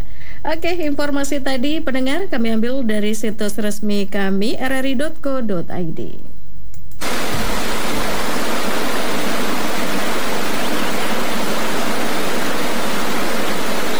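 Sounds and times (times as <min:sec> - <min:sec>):
speech: 0:00.4 - 0:06.3
flowing water of a stream: 0:07.0 - 0:13.9.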